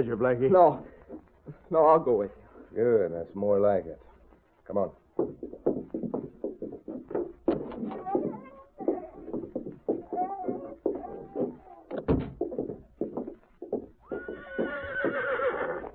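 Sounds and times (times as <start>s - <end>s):
speech: 0.0s - 1.0s, 1.7s - 4.1s, 4.7s - 5.9s
horse hooves clopping: 0.0s - 15.9s
horse neighing: 14.0s - 15.9s.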